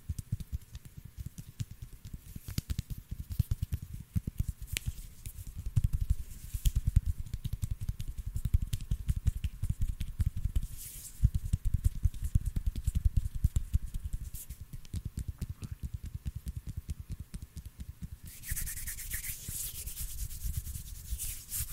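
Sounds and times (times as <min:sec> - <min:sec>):
hands rubbing and brushing: 0:00.3 - 0:15.3, 0:17.8 - 0:21.7.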